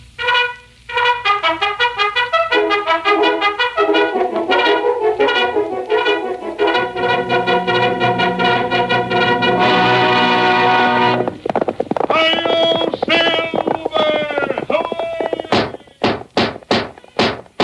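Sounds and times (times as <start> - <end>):
sustained brass-like tone: 0.2 - 11.4
horse galloping hoofbeats: 1.6 - 17.6.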